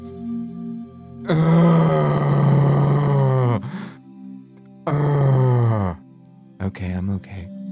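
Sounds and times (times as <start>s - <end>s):
speech: 1.3s - 2.3s, 6.7s - 7.6s
labored heavy breathing: 1.3s - 4.1s, 4.9s - 6.0s
quick rasping intake of breath: 3.6s - 4.0s.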